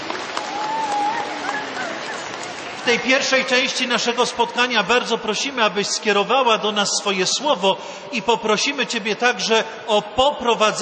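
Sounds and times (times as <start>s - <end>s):
crowd at a rosary prayer gathering clapping: 0.0s - 3.7s
speech: 2.9s - 10.8s.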